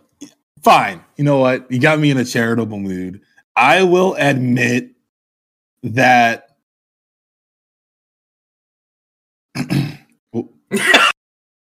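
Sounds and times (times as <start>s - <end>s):
speech: 0.6s - 4.9s, 5.8s - 6.5s, 9.6s - 11.1s
throat clearing: 9.5s - 11.2s.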